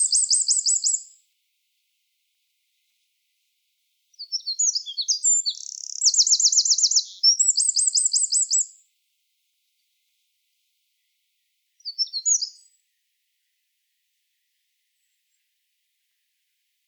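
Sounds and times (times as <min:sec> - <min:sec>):
Eurasian wren (Troglodytes troglodytes) song with rattling trills: 0:00.0 - 0:01.2, 0:04.1 - 0:08.9, 0:11.8 - 0:12.9.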